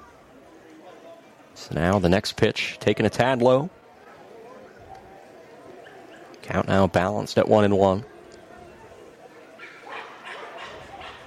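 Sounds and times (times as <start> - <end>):
speech: 1.6 - 3.8, 6.5 - 8.1
small dog yapping in high-pitched barks: 9.6 - 11.2.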